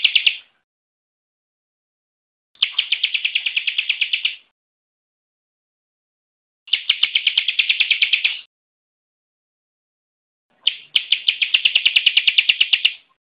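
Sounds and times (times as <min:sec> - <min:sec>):
Bar-winged prinia singing high chipping notes: 0:00.0 - 0:00.6, 0:02.6 - 0:04.5, 0:06.7 - 0:08.5, 0:10.5 - 0:13.2.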